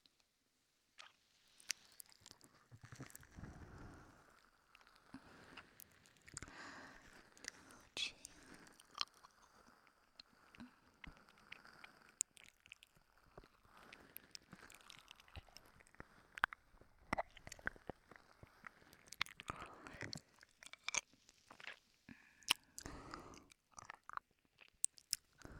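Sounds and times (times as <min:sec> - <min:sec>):
biting, crunching and wet chewing close to the ear: 0:01.0 - 0:25.5
person whispering: 0:06.9 - 0:08.7.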